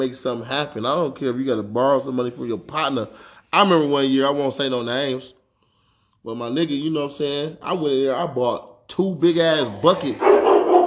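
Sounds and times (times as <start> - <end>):
speech: 0.0 - 5.4, 6.2 - 10.5
dog barking: 10.1 - 10.8.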